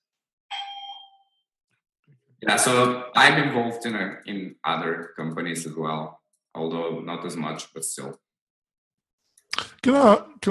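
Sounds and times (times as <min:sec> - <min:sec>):
doorbell chime: 0:00.5 - 0:01.3
speech: 0:02.4 - 0:08.2, 0:09.8 - 0:10.4.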